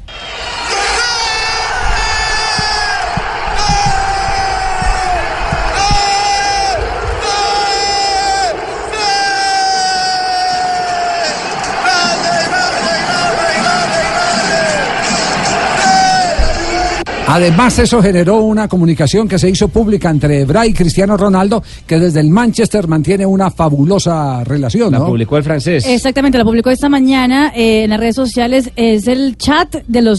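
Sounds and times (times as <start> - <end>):
roaring crowd cheering: 0.0 - 19.5
man excitedly shouting goal celebration: 0.8 - 14.9, 15.7 - 17.1
speech: 17.3 - 30.1.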